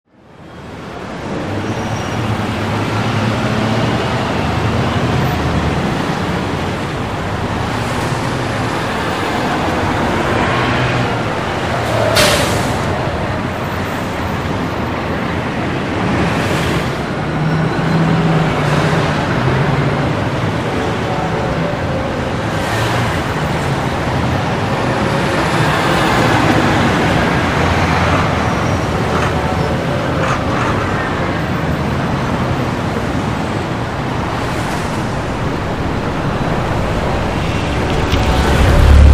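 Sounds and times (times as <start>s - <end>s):
heavy city traffic: 0.1s - 39.1s.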